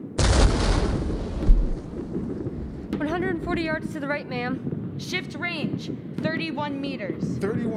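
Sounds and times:
field artillery gun firing in a firing battery: 0:00.1 - 0:03.2
heavy thump: 0:00.2 - 0:03.2
speech: 0:03.3 - 0:07.7.

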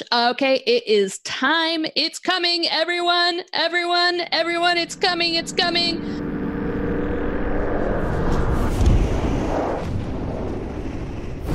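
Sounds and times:
speech: 0:00.0 - 0:06.2
explosion blast with a roaring rumble: 0:06.0 - 0:11.5.

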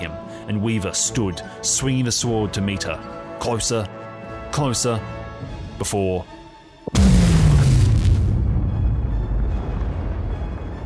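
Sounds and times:
speech: 0:00.5 - 0:04.0, 0:04.6 - 0:07.1
loud explosion with a sharp crack and rumbling roar: 0:06.9 - 0:10.8.

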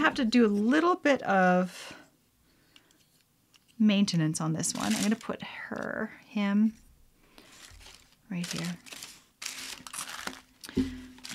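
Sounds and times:
speech: 0:00.0 - 0:02.0, 0:03.8 - 0:06.8, 0:08.3 - 0:09.0, 0:10.8 - 0:11.3
tissue paper crinkling while unwrapping ornaments: 0:04.6 - 0:05.9, 0:07.4 - 0:11.3.

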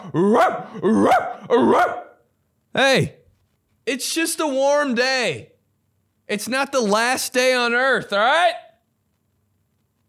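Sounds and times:
speech: 0:00.0 - 0:02.0, 0:02.8 - 0:03.2, 0:03.9 - 0:05.5, 0:06.3 - 0:08.6
dog barking: 0:00.3 - 0:02.2.

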